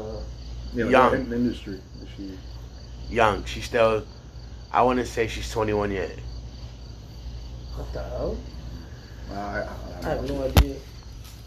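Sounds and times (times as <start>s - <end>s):
cricket chirping in a thin high trill: 0.0s - 11.4s
speech: 0.7s - 6.3s, 7.8s - 8.6s, 9.3s - 10.9s.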